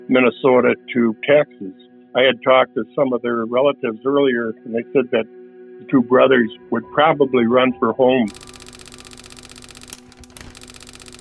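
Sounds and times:
speech: 0.1 - 8.4
teletype printer clattering out a message: 8.3 - 11.1.

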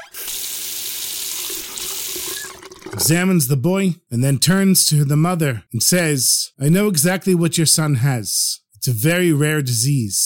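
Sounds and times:
tap running at a sink while hands are washed: 0.0 - 3.1
speech: 3.0 - 10.2.

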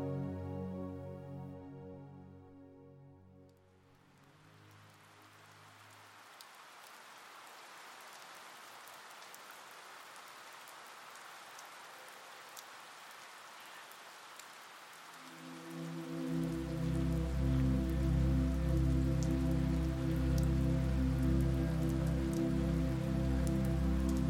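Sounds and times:
low sustained musical tones: 0.0 - 5.0, 15.2 - 24.2
gentle rain falling outside a window: 3.4 - 24.2.

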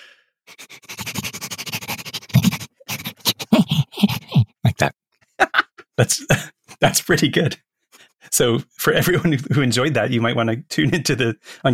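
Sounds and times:
person imitating a tanuki with sniffing and snuffling: 0.0 - 4.8
person making throaty grunts imitating a tanuki: 1.8 - 4.9
speech: 3.6 - 4.2, 6.0 - 7.7, 8.3 - 11.7
laughter: 5.4 - 5.8.

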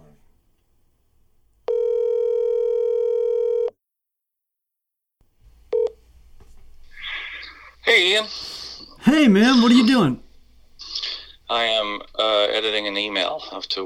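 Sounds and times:
long steady electronic telephone ring tone: 1.7 - 3.8
speech: 8.0 - 10.2, 11.5 - 13.8.

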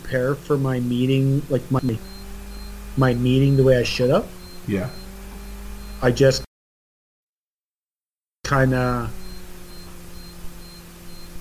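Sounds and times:
low hum: 0.0 - 6.4, 8.5 - 11.3
speech: 0.1 - 2.1, 3.0 - 5.0, 6.0 - 6.5, 8.5 - 9.2
faint high-pitched electronic beep: 1.6 - 6.5, 8.6 - 11.3.

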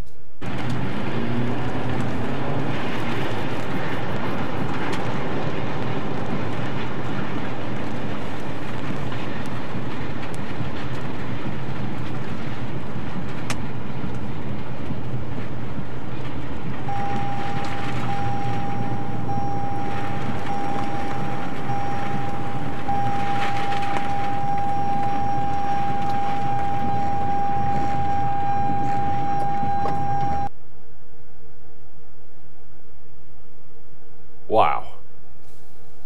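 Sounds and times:
tornado-force winds roaring and buffeting a moving truck: 0.3 - 36.0
thin steady tone: 16.9 - 30.5.

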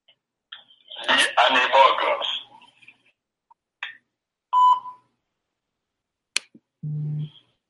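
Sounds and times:
pre-recorded voicemail voice from an automatic phone dialer: 0.9 - 2.8, 6.5 - 7.5
low buzzing tone of an automatic phone dialer: 6.8 - 7.3.

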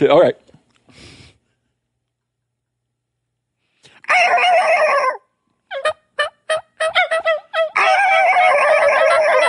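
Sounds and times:
tom turkey gobbling: 4.1 - 9.4.

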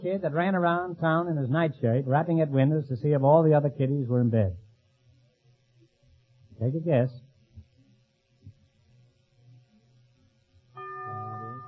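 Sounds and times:
speech: 0.0 - 4.6, 6.6 - 7.2
low murky hum: 0.0 - 11.6
quiz show bell ringing: 10.8 - 11.6.

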